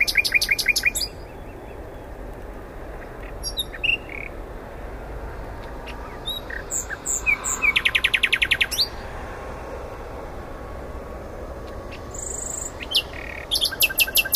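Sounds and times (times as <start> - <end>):
common nightingale singing, Luscinia megarhynchos: 0.0 - 2.2, 3.0 - 4.4, 5.7 - 9.0, 11.7 - 14.3.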